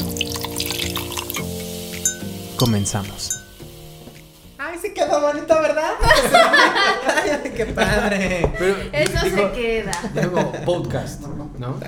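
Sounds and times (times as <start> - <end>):
drinks poured: 0.0 - 4.3
glasses clinking: 1.9 - 3.7
speech: 2.6 - 3.4, 5.2 - 11.8
laughter: 6.0 - 11.0.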